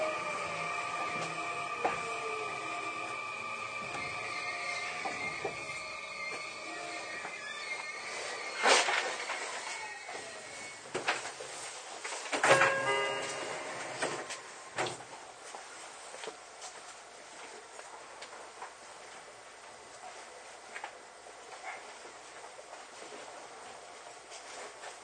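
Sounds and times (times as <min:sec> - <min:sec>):
electric commuter train motor whining: 0:00.0 - 0:11.2, 0:12.5 - 0:15.0.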